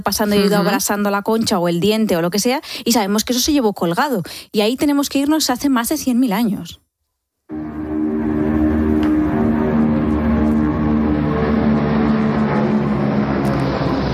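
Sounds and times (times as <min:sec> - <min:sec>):
speech: 0:00.0 - 0:06.8
airplanes flying with engine drone: 0:07.5 - 0:14.1.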